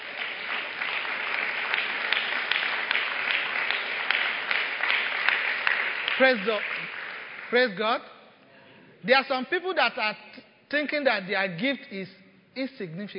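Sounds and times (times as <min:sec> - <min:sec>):
church audience clapping as a clap offering: 0:00.0 - 0:07.9
speech: 0:06.2 - 0:08.1, 0:09.0 - 0:13.1.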